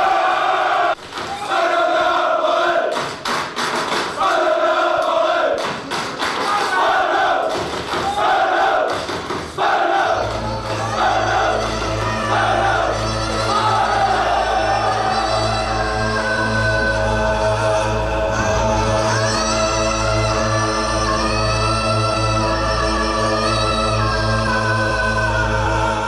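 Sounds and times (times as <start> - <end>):
crowd of football fans roaring and chanting: 0.0 - 26.0.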